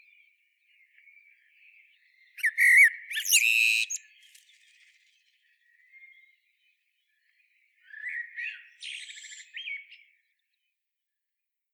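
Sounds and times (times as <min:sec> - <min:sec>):
common blackbird Turdus merula song: 0:00.0 - 0:10.7.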